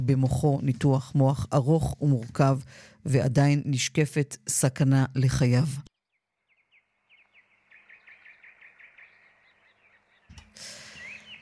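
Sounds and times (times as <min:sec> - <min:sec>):
speech: 0:00.1 - 0:05.9
birds chirping outdoors with bright tweets: 0:05.9 - 0:11.4.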